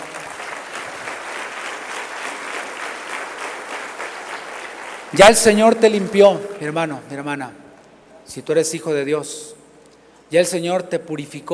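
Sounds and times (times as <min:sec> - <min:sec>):
audience applauding: 0:00.0 - 0:06.0
speech: 0:05.1 - 0:07.6, 0:08.3 - 0:09.6, 0:10.3 - 0:11.5.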